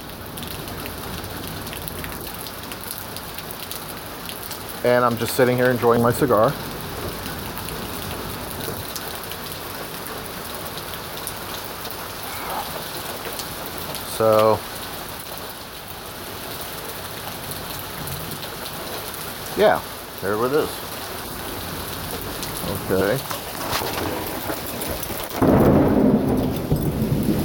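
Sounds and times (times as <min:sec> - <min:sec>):
heavy storm rain pattering on hard surfaces: 0:00.0 - 0:27.4
speech: 0:04.8 - 0:06.7, 0:14.2 - 0:14.7, 0:19.6 - 0:20.9, 0:22.7 - 0:23.4.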